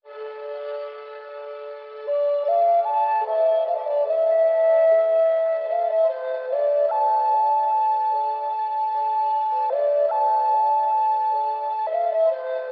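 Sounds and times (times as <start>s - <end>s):
sad flute loop: 0.1s - 12.7s.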